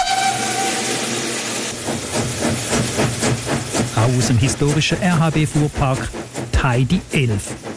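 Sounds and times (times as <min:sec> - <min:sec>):
historic oil-fired Rhaetian Railway steam locomotive whistle: 0:00.0 - 0:01.5
oil-fired steam locomotive hissing steam and chuffing pulling a festival train: 0:00.0 - 0:07.7
speech: 0:04.1 - 0:07.7.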